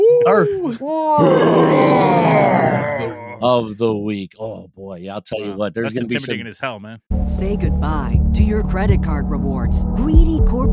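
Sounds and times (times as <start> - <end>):
laughter: 0.0 - 3.7, 4.4 - 7.0
speech: 0.2 - 10.7
loud sustained raspy roar: 1.2 - 3.6
deep guttural groan: 1.2 - 3.7.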